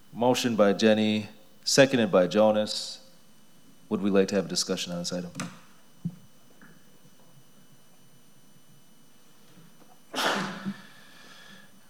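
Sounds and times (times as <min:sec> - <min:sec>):
speech: 0:00.1 - 0:03.0, 0:03.9 - 0:06.2
person sneezing: 0:10.1 - 0:11.0.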